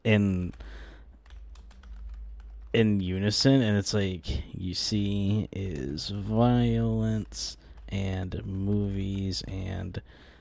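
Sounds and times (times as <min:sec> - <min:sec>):
speech: 0:00.0 - 0:00.8, 0:02.7 - 0:10.3
typing on a computer keyboard: 0:00.4 - 0:02.9, 0:04.9 - 0:09.8.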